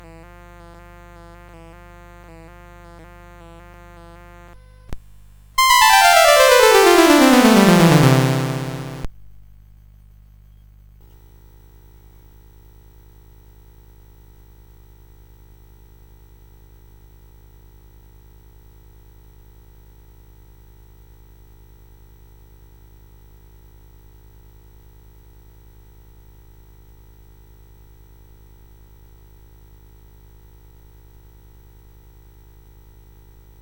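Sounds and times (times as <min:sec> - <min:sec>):
piano glissando: 0:05.6 - 0:09.1.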